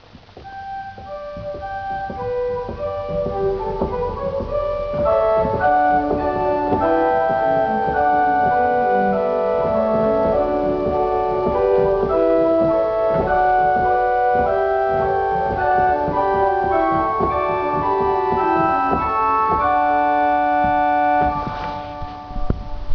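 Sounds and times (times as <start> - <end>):
organ playing a fifth: 0.4 - 22.9.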